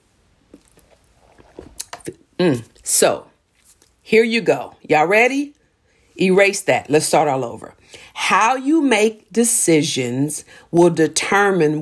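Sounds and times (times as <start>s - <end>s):
person sipping and swallowing water: 0.5s - 2.2s
speech: 2.4s - 3.3s, 4.1s - 5.6s, 6.2s - 11.8s.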